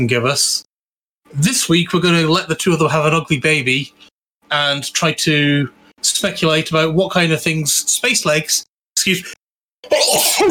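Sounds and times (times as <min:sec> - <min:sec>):
speech: 0:00.0 - 0:00.7, 0:01.3 - 0:10.5
person sneezing: 0:09.8 - 0:10.5.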